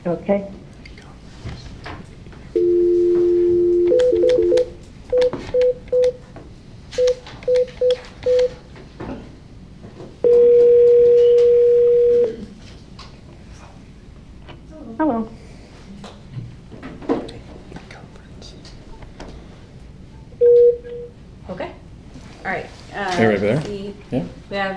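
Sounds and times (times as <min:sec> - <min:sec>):
speech: 0:00.0 - 0:00.6
faint noise: 0:00.0 - 0:24.7
steady two-tone phone dial tone while adding caller: 0:02.6 - 0:06.1, 0:10.2 - 0:12.4, 0:20.4 - 0:21.1
short phone keypad beeps: 0:02.6 - 0:06.2, 0:07.0 - 0:08.6.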